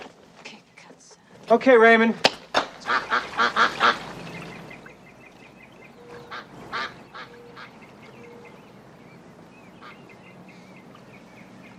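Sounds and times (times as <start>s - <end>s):
speech: 1.5s - 2.3s
ducks quacking with loud nasal calls: 2.8s - 11.7s
faint bird chirps: 4.2s - 11.7s.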